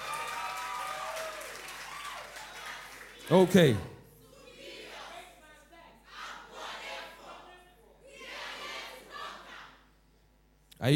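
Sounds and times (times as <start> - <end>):
audience applause and cheering at a school debate event: 0.0 - 3.8
speech: 3.3 - 3.9.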